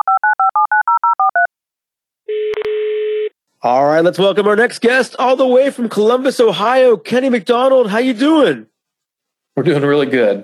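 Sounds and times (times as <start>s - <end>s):
sustained telephone ringing tone: 0.0s - 1.5s, 2.3s - 3.4s
speech: 3.6s - 8.7s, 9.6s - 10.4s.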